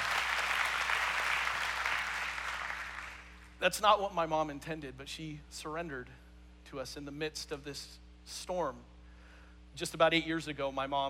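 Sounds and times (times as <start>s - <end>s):
audience clapping: 0.0s - 3.4s
speech: 3.6s - 8.9s, 9.8s - 11.0s.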